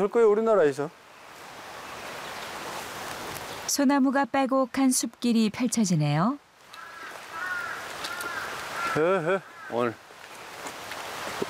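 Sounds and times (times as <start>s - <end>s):
speech: 0.0s - 1.0s, 3.8s - 6.4s, 9.0s - 10.0s
quiet outdoor noise at Eunhae Temple on Palgongsan mountain: 0.0s - 11.4s
crows cawing at Eunhae Temple on Palgongsan mountain: 6.6s - 10.0s.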